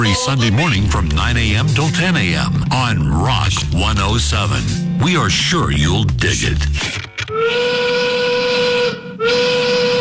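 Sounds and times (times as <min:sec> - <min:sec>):
speech: 0:00.0 - 0:07.8
loud steam whistle blasts marking five o'clock: 0:07.3 - 0:09.9.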